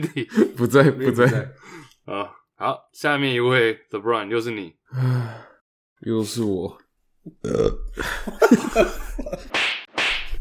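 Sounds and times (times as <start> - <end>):
laughter: 0.0 - 1.6, 8.0 - 9.6
speech: 0.0 - 9.4
loud drawn-out burp: 7.3 - 8.0.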